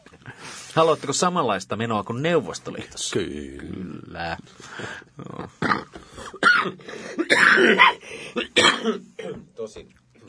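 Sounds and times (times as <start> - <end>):
speech: 0.8 - 10.0
throat clearing: 5.4 - 9.5
harsh coughs: 5.6 - 9.4.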